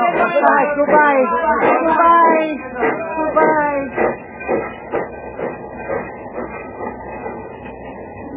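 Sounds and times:
departing train clattering along rails: 0:00.0 - 0:08.3
speech: 0:00.4 - 0:02.0.

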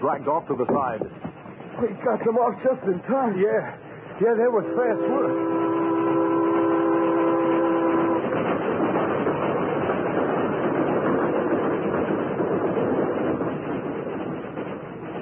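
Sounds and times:
speech: 0:00.0 - 0:05.8
train wheels rumbling: 0:00.0 - 0:15.2
train horn blaring: 0:04.4 - 0:08.6.

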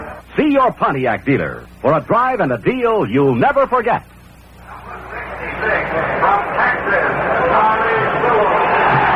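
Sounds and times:
speech: 0:00.6 - 0:04.2
huge stadium crowd roaring: 0:04.7 - 0:09.1.

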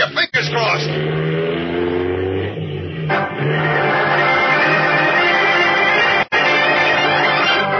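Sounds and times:
powerful car engine accelerating hard through gear changes on a twisting road: 0:00.0 - 0:07.7.

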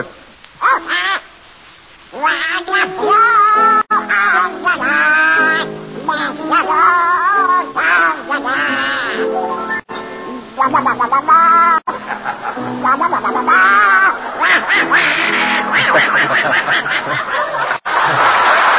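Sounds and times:
raspy nasal cartoon duck voice quacking a song on a radio broadcast: 0:00.6 - 0:01.3, 0:02.2 - 0:09.4, 0:10.3 - 0:11.8, 0:12.6 - 0:15.8
laughter: 0:11.9 - 0:18.7.

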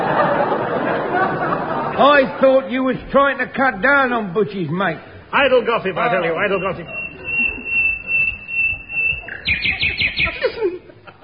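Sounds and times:
laughter: 0:00.0 - 0:02.8, 0:05.8 - 0:11.2
murmur of noise: 0:00.0 - 0:11.2
speech: 0:02.0 - 0:07.0
English songbird singing loudly: 0:06.6 - 0:10.5.

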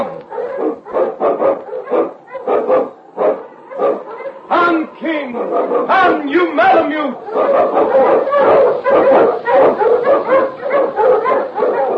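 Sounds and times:
Malamute sled dog barking: 0:00.0 - 0:11.9.

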